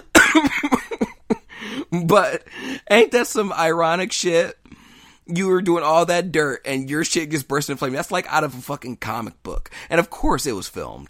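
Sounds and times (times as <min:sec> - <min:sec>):
harsh coughing fit: 0:00.0 - 0:02.5
speech: 0:00.4 - 0:00.8, 0:01.9 - 0:04.6, 0:05.3 - 0:11.0.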